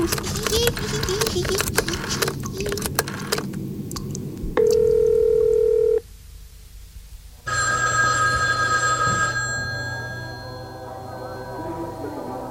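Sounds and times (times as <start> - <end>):
busy noise: 0.0 - 12.5
hum-like telephone line tone as a call is placed: 4.6 - 6.0, 7.5 - 12.5.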